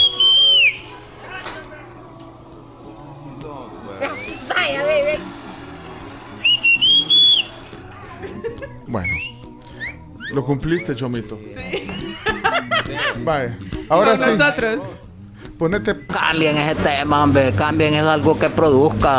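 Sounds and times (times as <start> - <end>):
person whistling loud high-pitched bursts: 0.0 - 1.0, 6.4 - 7.8, 9.0 - 10.9
steady low hum: 1.8 - 8.7
laughter: 7.4 - 9.0, 11.6 - 15.0
speech: 10.4 - 11.9, 12.9 - 15.0, 15.6 - 19.1.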